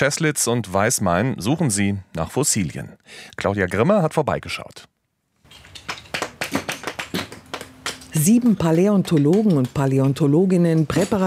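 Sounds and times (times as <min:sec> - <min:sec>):
speech: 0:00.0 - 0:04.9, 0:08.2 - 0:11.2
hammer splitting small limestone plates at a fossil dig in a quarry: 0:05.5 - 0:11.2.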